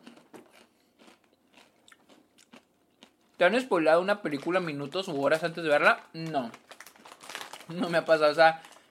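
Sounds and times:
rolled tortilla chips being bitten and chewed: 0.0 - 8.8
speech: 3.4 - 6.7, 7.7 - 8.7.

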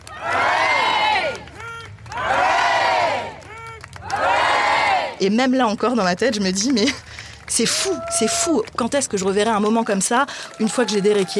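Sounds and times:
crowd chanting hip hip hurrah: 0.1 - 5.2
speech: 5.2 - 11.3.

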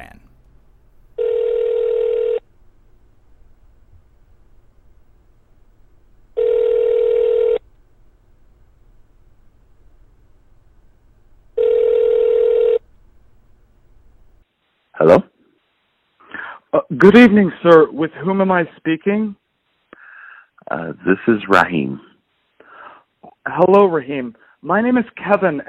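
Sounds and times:
faint low hum: 0.0 - 25.6
outgoing phone call ring tones on the caller's end: 1.2 - 2.4, 6.4 - 7.6, 11.6 - 12.8
speech: 17.0 - 19.4, 20.7 - 22.1, 23.5 - 25.6.

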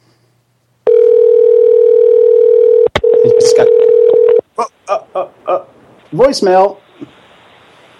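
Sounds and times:
telephone ringing tone on a call: 0.9 - 4.4
speech: 6.1 - 6.8.

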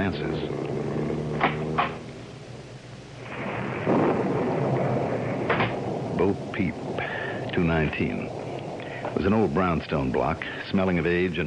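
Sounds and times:
deep thunder rumbling: 0.0 - 11.4
sharp thunder crackles: 0.0 - 11.4
steady rain hissing: 0.0 - 11.4
speech: 0.1 - 0.6, 6.6 - 7.0, 7.6 - 8.4, 9.2 - 11.4.

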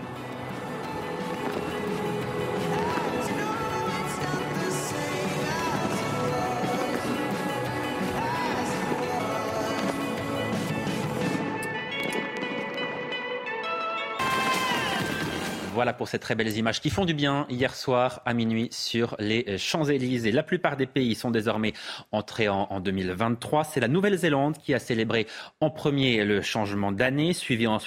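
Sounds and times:
New Year's fireworks display crackling and banging: 0.0 - 13.1, 14.2 - 15.8
speech: 15.8 - 27.8.

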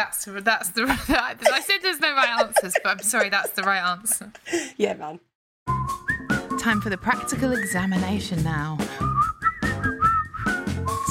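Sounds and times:
speech: 0.0 - 5.3, 6.2 - 9.0
laughter: 0.9 - 4.8
person whistling a short wavering tune: 5.7 - 6.8, 7.4 - 8.0, 9.0 - 11.0.

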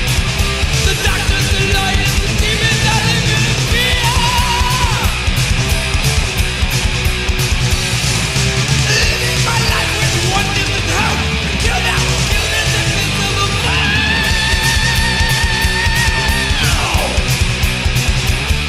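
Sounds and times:
heavy metal with pounding drums and distorted guitars: 0.0 - 18.6
high-pitched heavy metal vocal scream: 13.6 - 17.2.

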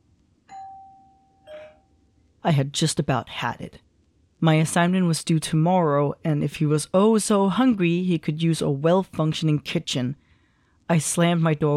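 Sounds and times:
two-tone ding-dong doorbell ringing in an apartment: 0.5 - 2.1
speech: 2.4 - 10.2, 10.9 - 11.7.

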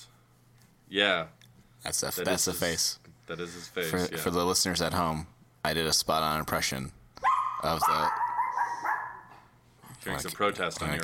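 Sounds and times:
speech: 0.9 - 7.0, 7.6 - 8.2, 10.0 - 11.0
dog barking: 7.2 - 9.5.

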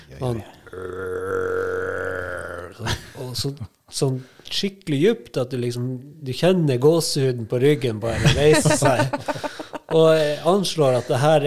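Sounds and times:
speech: 0.2 - 1.1, 2.8 - 11.4
person imitating the deep roar of a bear: 0.6 - 2.8
laughter: 8.1 - 11.3.

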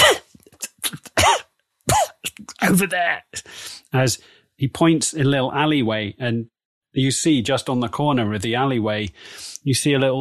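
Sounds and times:
voice imitating a sickly boy's hacking cough: 0.0 - 2.9
speech: 2.7 - 10.1.

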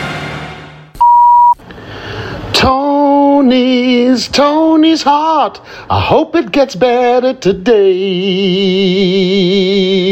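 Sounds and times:
answering machine beep: 1.0 - 1.6
speech: 3.5 - 10.1.

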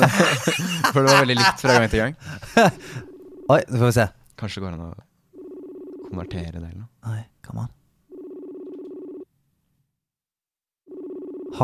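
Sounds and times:
laughter: 0.0 - 3.0
speech: 0.1 - 5.1, 6.1 - 7.8
telephone with warbling electronic ring: 2.6 - 3.6, 5.4 - 6.4, 8.1 - 9.3, 10.9 - 11.6.

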